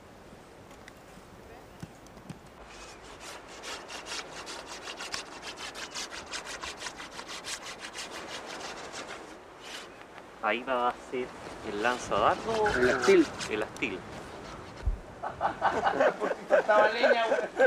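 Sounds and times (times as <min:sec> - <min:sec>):
scraper rubbing wood: 0:02.6 - 0:10.0, 0:11.7 - 0:15.0
speech: 0:10.5 - 0:14.1, 0:15.4 - 0:17.6
laughter: 0:15.2 - 0:17.6.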